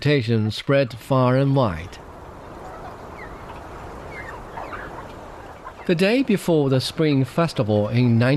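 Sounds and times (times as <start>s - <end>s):
speech: 0.0s - 2.1s, 5.9s - 8.3s
about 25 chickens kept at home clucking softly: 1.7s - 8.3s.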